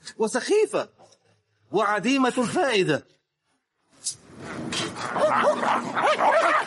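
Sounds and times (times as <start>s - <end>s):
speech: 0.2s - 1.1s, 1.7s - 3.2s, 4.0s - 6.6s
several dogs barking and yelping: 4.9s - 6.6s.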